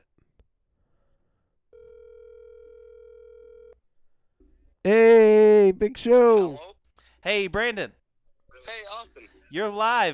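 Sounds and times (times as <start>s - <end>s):
outgoing phone line ringing tone: 1.7s - 3.8s
speech: 5.8s - 8.0s, 8.6s - 10.1s.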